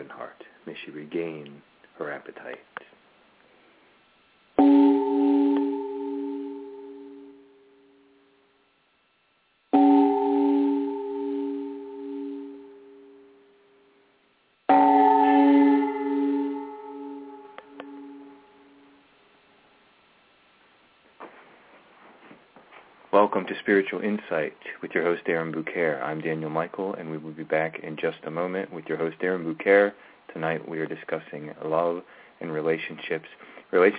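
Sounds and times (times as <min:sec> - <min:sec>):
speech: 0:00.0 - 0:02.9, 0:23.3 - 0:33.9
resonant bell chimes: 0:04.6 - 0:07.9, 0:09.8 - 0:13.4, 0:14.7 - 0:19.0.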